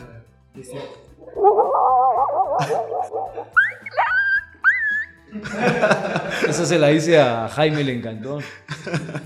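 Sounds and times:
speech: 0:00.6 - 0:01.9, 0:05.3 - 0:09.2
person laughing: 0:01.2 - 0:04.2
person imitating a distant dog barking: 0:01.2 - 0:04.5.

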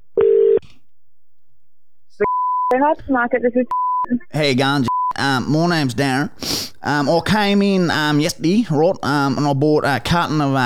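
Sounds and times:
telephone ringing tone on an outgoing prank call: 0:00.2 - 0:00.6
speech: 0:02.7 - 0:10.6.

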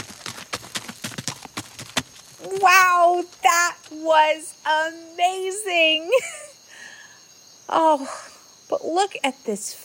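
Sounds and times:
horse hooves galloping: 0:00.0 - 0:04.5
speech: 0:02.5 - 0:06.4, 0:07.7 - 0:09.8.

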